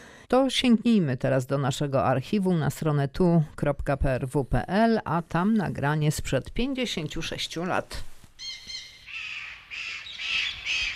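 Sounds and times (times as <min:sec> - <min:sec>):
speech: 0:00.3 - 0:08.1
birds cawing in a zoo aviary in Wrocław: 0:08.4 - 0:10.9.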